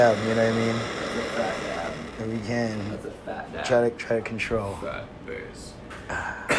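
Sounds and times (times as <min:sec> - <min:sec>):
speech: 0:00.0 - 0:06.5
throat clearing: 0:06.0 - 0:06.5
person coughing: 0:06.1 - 0:06.5.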